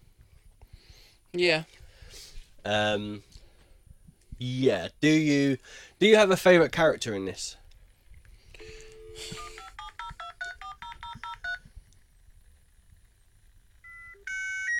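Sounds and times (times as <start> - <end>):
speech: 1.3 - 1.8, 2.6 - 3.3, 4.4 - 7.6, 8.6 - 9.4
dial-up internet modem touch-tone dialing beeps: 8.6 - 11.6, 13.8 - 14.7
dial-up internet modem handshake tones: 8.6 - 11.7.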